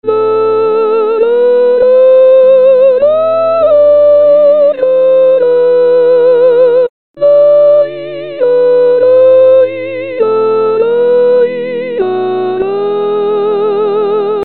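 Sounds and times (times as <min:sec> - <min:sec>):
soprano part of a sevillanas introduction: 0:00.0 - 0:14.4.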